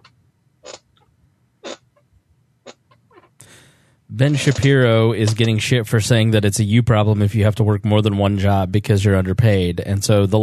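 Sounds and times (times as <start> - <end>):
broken chair creaking and squeaking: 2.7 - 3.4, 4.2 - 5.6
speech: 4.1 - 10.4.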